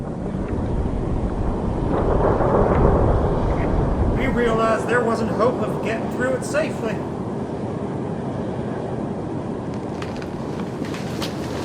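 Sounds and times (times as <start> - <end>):
deep rumbling thunder from an approaching storm: 0.0 - 8.4
heavy wind: 0.0 - 11.6
speech: 4.9 - 7.1.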